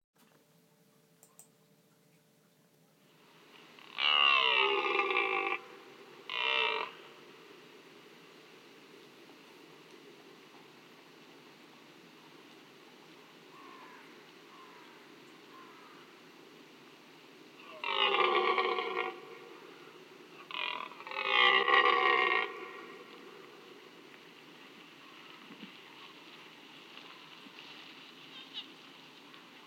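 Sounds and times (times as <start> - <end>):
red deer calling: 3.8 - 7.4, 17.6 - 23.8.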